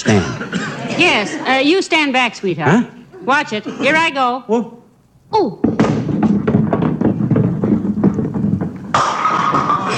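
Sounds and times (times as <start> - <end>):
speech: 0.0 - 0.3, 1.0 - 5.7
bowling ball rolling down the lane: 5.6 - 9.9.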